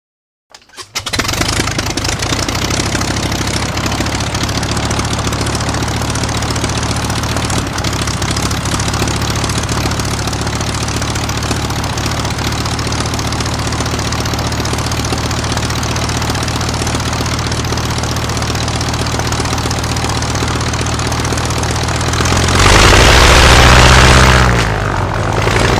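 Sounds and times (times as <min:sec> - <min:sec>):
vintage propeller plane starting and idling: 0:00.5 - 0:25.7.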